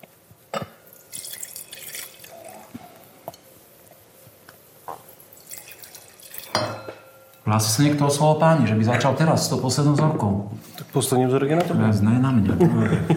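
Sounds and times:
wine pouring from a glass carafe into glasses at a wine tasting: 0:00.8 - 0:03.1, 0:05.0 - 0:07.4
sharp glassy clinks of wine glasses and carafe: 0:05.6 - 0:07.4
speech: 0:07.5 - 0:13.1
laughter: 0:12.5 - 0:13.1.

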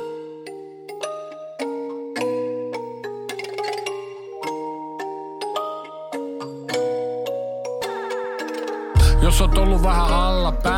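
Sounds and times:
steady chiming melody of bright bell-like plucked notes: 0:00.0 - 0:10.7
low sustained bass tones: 0:09.0 - 0:10.7
speech: 0:09.3 - 0:10.7.

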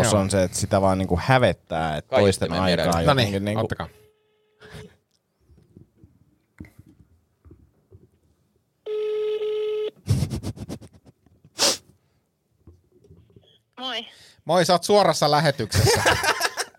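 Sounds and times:
speech: 0:00.0 - 0:04.0, 0:13.8 - 0:16.5
steady electronic telephone tone: 0:08.8 - 0:10.0
laughter: 0:15.6 - 0:16.7.

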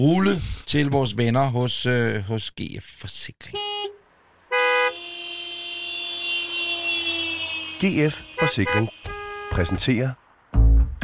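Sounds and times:
speech: 0:00.0 - 0:03.7, 0:07.8 - 0:10.2
car horn honking: 0:03.5 - 0:10.2.

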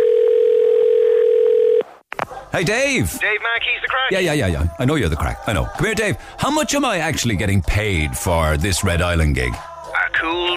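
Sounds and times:
telephone dial tone: 0:00.0 - 0:01.8
speech: 0:02.5 - 0:10.5.

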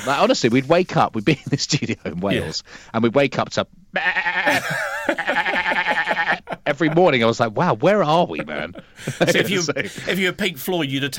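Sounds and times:
laughter: 0:00.0 - 0:00.4, 0:01.3 - 0:02.6, 0:04.5 - 0:10.5
speech: 0:00.0 - 0:06.0, 0:06.6 - 0:11.1
person imitating a sheep's quavering bleat: 0:04.0 - 0:06.5.

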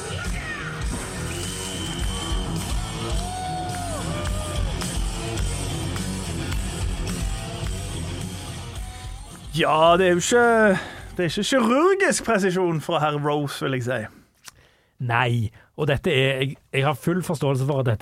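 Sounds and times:
roaring, cheering crowd at a rock concert: 0:00.0 - 0:08.3
live rock concert music: 0:00.0 - 0:10.0
shrill whistle blown at a live rock concert: 0:00.9 - 0:04.6
speech: 0:09.6 - 0:14.2, 0:15.0 - 0:18.0.

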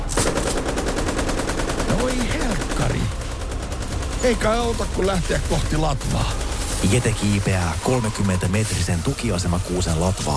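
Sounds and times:
automatic gunfire: 0:00.2 - 0:07.4
speech: 0:04.2 - 0:10.3.

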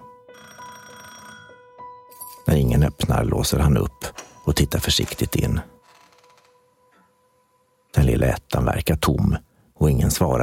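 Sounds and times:
electric doorbell buzzing at a fifth-floor apartment door: 0:00.3 - 0:01.7
speech: 0:02.5 - 0:05.8, 0:08.2 - 0:10.4.

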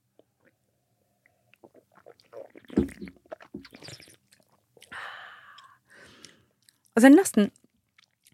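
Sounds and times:
mouth slurping wine: 0:01.6 - 0:04.9
soft breaths: 0:04.9 - 0:06.6
speech: 0:07.0 - 0:07.6.

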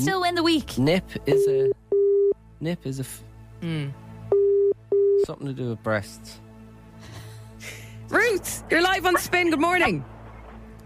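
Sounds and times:
speech: 0:00.0 - 0:01.9, 0:02.6 - 0:04.0, 0:05.2 - 0:06.4, 0:07.0 - 0:10.1
telephone line ringing tone: 0:04.3 - 0:05.2.

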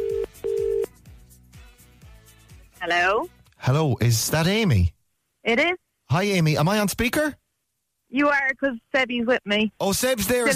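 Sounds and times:
ringback tone of an outgoing phone call: 0:00.0 - 0:00.9
speech: 0:02.8 - 0:07.4, 0:08.1 - 0:10.5.

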